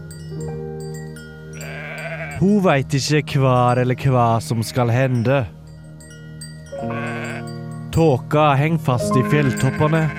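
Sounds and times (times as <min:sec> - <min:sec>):
single sheep bleating on a mountain summer farm: 0:01.6 - 0:02.4, 0:06.8 - 0:07.5, 0:09.2 - 0:10.1
speech: 0:02.4 - 0:05.6, 0:08.0 - 0:10.1.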